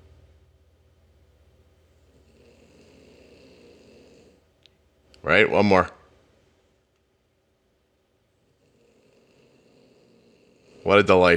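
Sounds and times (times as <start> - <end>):
pet snoring while asleep: 2.0 - 4.5, 8.3 - 11.3
speech: 5.2 - 6.0, 10.9 - 11.3.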